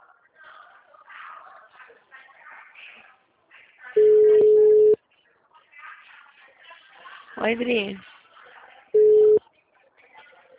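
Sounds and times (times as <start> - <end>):
busy tone on a phone line after a dropped call: 4.0 - 5.0, 9.0 - 9.4
speech: 7.4 - 8.1.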